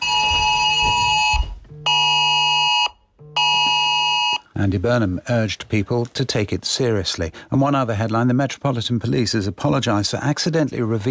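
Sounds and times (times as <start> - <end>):
harsh buzzing mobile phone emergency alert tone warning of wildfires: 0.0 - 4.4
speech: 4.6 - 11.0.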